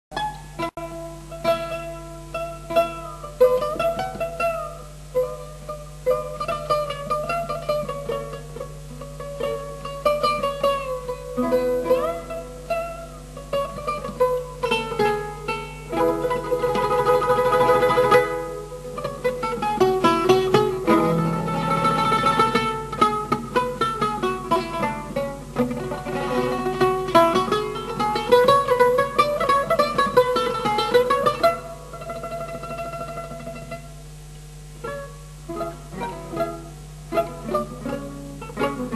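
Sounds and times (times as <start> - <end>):
eight-string oud playing: 0.1 - 38.9.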